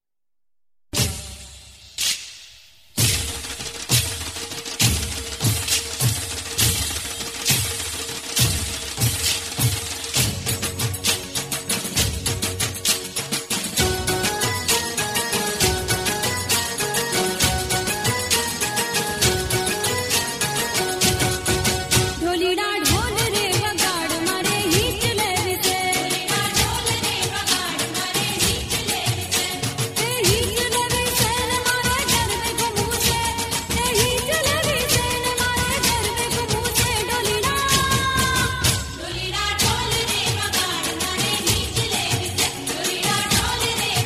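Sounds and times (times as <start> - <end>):
dhol drumming for Gujarati Garba: 3.0 - 44.0.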